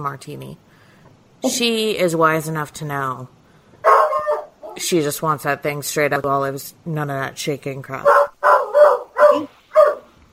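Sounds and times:
speech: 0.0s - 0.8s, 1.4s - 4.0s, 4.8s - 8.2s
dog barking sharply: 3.8s - 4.8s, 8.0s - 10.1s.

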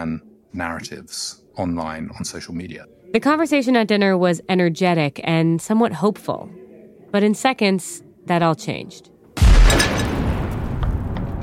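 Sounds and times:
speech: 0.0s - 9.1s
large explosion down the street in Kabul: 9.4s - 11.4s.

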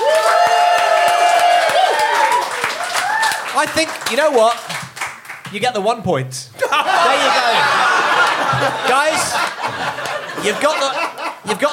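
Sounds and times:
cheers and whoops: 0.0s - 3.6s
live audience applauding: 0.0s - 5.6s, 7.5s - 11.4s
speech: 3.6s - 4.8s, 5.5s - 7.8s, 8.4s - 9.8s, 10.4s - 11.7s
laughter: 6.6s - 11.7s.

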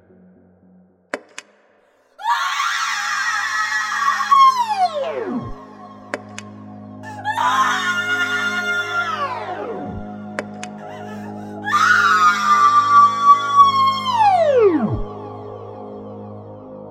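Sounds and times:
AI printer booting up with grating electronic screaming howls: 2.2s - 6.0s, 7.0s - 10.2s, 10.9s - 15.2s.

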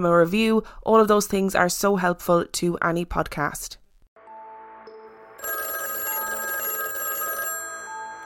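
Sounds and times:
speech: 0.0s - 3.8s
telephone bell ringing: 5.4s - 8.2s.

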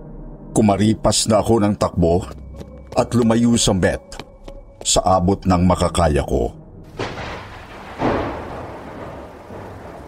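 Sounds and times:
speech: 0.6s - 4.2s, 4.8s - 6.6s
heavy rain at a jeepney loading stop: 6.9s - 10.0s
sharp rumbling thunderclaps: 6.9s - 10.0s.

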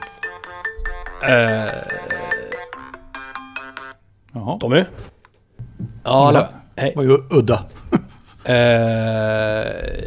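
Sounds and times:
phone ringtone playing electronic melody: 0.0s - 4.0s
speech: 1.2s - 2.3s, 4.4s - 5.1s, 6.0s - 7.8s, 8.4s - 10.0s.

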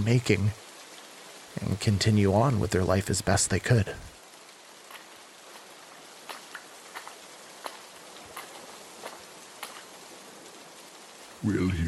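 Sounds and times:
speech: 0.0s - 0.6s, 1.6s - 4.1s, 11.4s - 11.8s
steady rain: 0.0s - 11.8s
water drips and taps: 4.8s - 10.0s.

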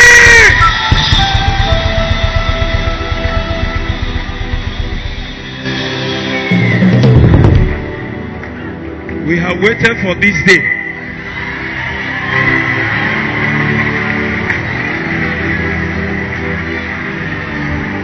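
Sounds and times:
fast rhythmic beating: 0.0s - 5.8s
large crowd screaming and shouting: 0.0s - 8.8s, 10.4s - 18.0s
speech: 9.5s - 10.8s.

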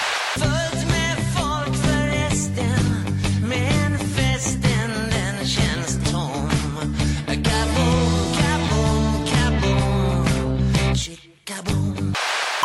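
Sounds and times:
Swedish pop rock song: 0.1s - 12.6s
guitars: 0.4s - 11.1s
person singing: 0.4s - 12.2s.

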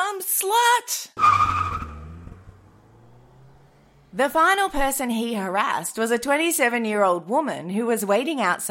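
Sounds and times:
car tires screeching: 1.2s - 5.0s
car engine rumble driving off: 1.2s - 5.2s
speech: 4.2s - 8.6s.

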